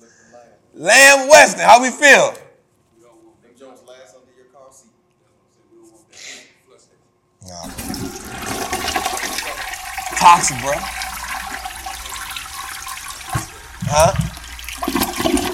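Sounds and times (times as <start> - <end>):
speech: 0.8 - 2.4, 10.2 - 11.0, 13.9 - 14.3
toilet flushing: 7.6 - 15.5.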